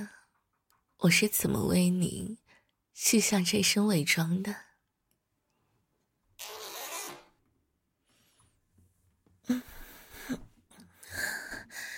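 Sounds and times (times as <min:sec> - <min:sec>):
speech: 0:01.0 - 0:02.4, 0:03.0 - 0:04.7, 0:09.5 - 0:09.7
zipper sliding down: 0:06.4 - 0:07.4.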